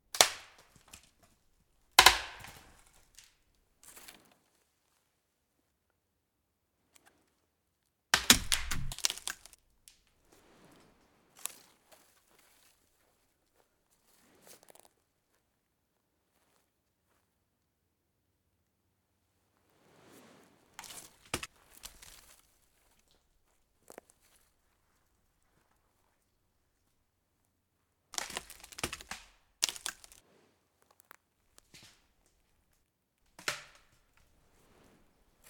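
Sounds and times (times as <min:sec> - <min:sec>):
branches: 0:00.1 - 0:01.3, 0:02.0 - 0:04.2, 0:08.2 - 0:09.6, 0:20.7 - 0:23.2, 0:28.2 - 0:35.4.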